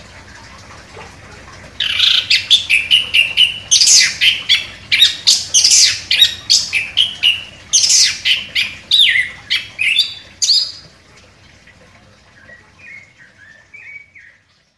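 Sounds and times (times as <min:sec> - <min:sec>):
orange-headed thrush singing actively: 0:01.8 - 0:10.8, 0:12.4 - 0:14.4.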